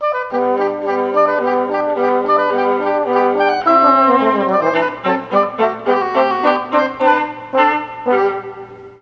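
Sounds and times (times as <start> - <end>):
oboe: 0.0 - 9.0
viola: 0.0 - 9.0
trombone: 0.1 - 9.0.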